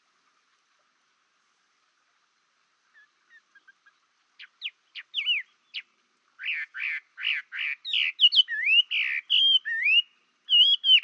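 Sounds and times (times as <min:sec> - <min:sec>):
Chinese hwamei singing clipped notes, buzzy bursts and slurred whistles: 0:04.4 - 0:11.0.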